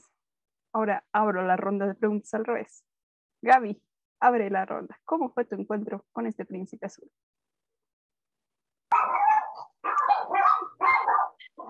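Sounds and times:
speech: 0.8 - 7.3
several dogs barking: 8.9 - 11.6.

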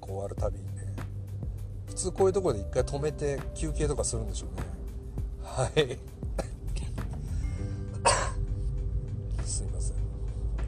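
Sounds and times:
steady low rumbling hum: 0.0 - 10.6
speech: 2.0 - 4.8, 5.6 - 6.1
person coughing: 6.4 - 6.7, 8.0 - 8.4.

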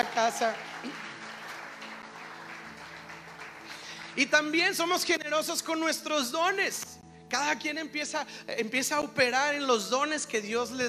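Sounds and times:
speech: 0.0 - 1.1, 4.2 - 10.8
crowd applauding: 0.0 - 5.1.

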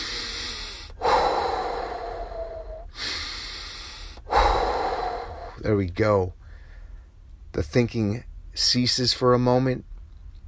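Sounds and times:
slow deep breaths in and out: 0.0 - 5.8, 6.4 - 7.2
speech: 5.6 - 6.4, 7.6 - 9.9.

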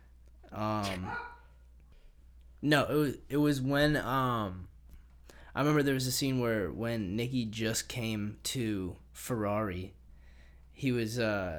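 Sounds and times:
quiet hum: 0.0 - 11.5
speech: 0.6 - 1.3, 2.6 - 4.7, 5.6 - 10.0, 10.8 - 11.5
drawn-out dog bark from downstairs: 0.9 - 1.5.

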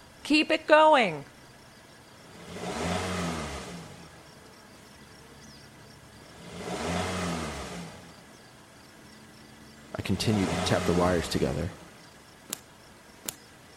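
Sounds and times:
speech: 0.3 - 1.3, 10.1 - 11.8
car engine steady idling rumble: 1.5 - 13.7
car engine revving to a roar: 2.2 - 4.3, 5.4 - 8.4, 9.7 - 12.2.

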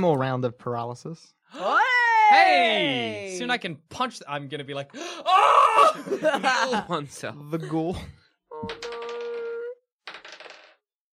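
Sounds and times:
speech: 0.0 - 8.9
laughter: 5.7 - 8.1
dice clattering onto a table during a tabletop role-playing game: 8.7 - 9.4, 10.0 - 10.8.

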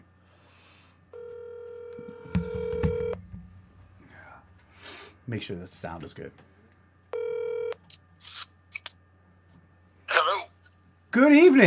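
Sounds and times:
ringback tone from an outgoing telephone call: 1.1 - 3.2, 7.1 - 7.8
speech: 5.3 - 6.5, 11.2 - 11.6.

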